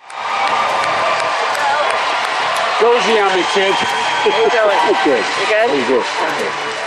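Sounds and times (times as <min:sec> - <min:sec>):
large crowd cheering and whooping at a debate stage: 0:00.0 - 0:06.8
speech: 0:02.8 - 0:06.8.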